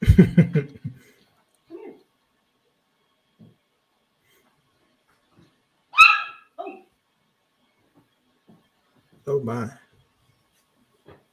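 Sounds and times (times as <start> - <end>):
laughter: 0.0 - 1.1
dog barking: 6.0 - 6.8
dog whining and whimpering: 6.0 - 6.9
speech: 9.4 - 9.8.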